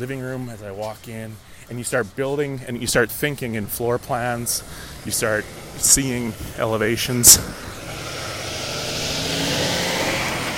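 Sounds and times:
speech: 0:00.0 - 0:07.8
large truck passing: 0:02.8 - 0:10.5.

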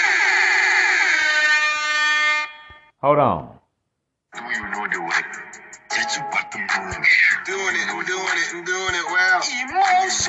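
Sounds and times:
air horn alarm: 0:00.0 - 0:02.9
speech: 0:03.0 - 0:03.6, 0:06.1 - 0:10.2.

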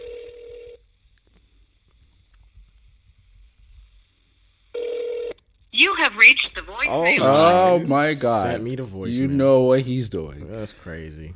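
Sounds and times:
low noise: 0:00.0 - 0:11.3
outgoing phone call electronic ringback tone: 0:04.8 - 0:05.3
speech: 0:05.8 - 0:11.3.

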